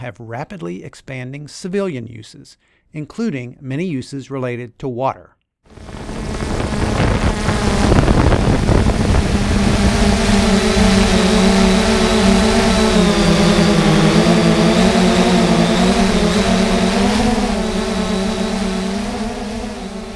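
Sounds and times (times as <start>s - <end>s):
speech: 0.0s - 6.0s
unmanned aerial drone flying and recording video over the Clinch River: 5.7s - 20.1s
rough windy hiss: 5.8s - 19.0s.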